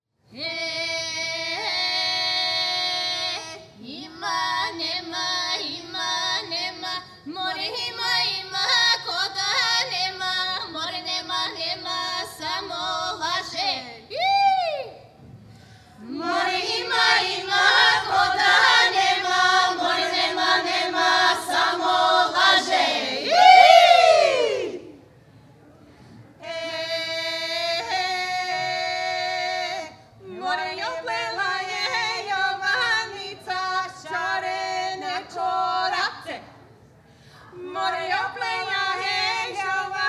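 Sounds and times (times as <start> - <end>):
Bulgarian women's choir singing: 0.4 - 14.2, 16.0 - 25.0, 26.4 - 36.5, 37.5 - 40.0.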